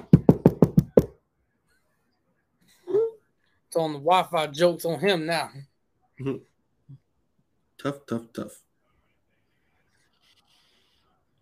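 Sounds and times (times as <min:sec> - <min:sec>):
sharp knocks on wood: 0:00.0 - 0:01.1
speech: 0:03.8 - 0:06.5, 0:07.8 - 0:08.6.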